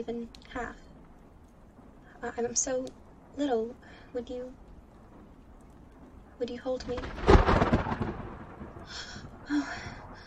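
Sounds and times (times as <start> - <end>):
speech: 0.0 - 0.8, 2.2 - 4.6, 6.4 - 8.0, 8.8 - 10.0
faint rolling thunder rumbling: 0.0 - 10.2.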